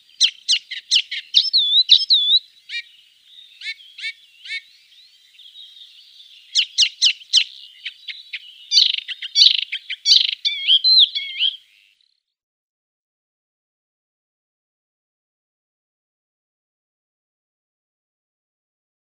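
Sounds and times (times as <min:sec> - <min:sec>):
Icterine warbler singing: 0:00.0 - 0:12.4.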